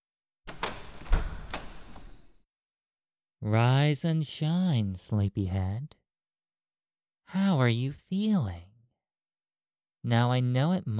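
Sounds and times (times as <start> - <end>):
clunks and knocks: 0.5 - 2.3
door to a locked room sliding open with a rough scraping rumble: 0.5 - 2.3
speech: 3.4 - 6.0, 7.3 - 8.7, 10.0 - 10.9.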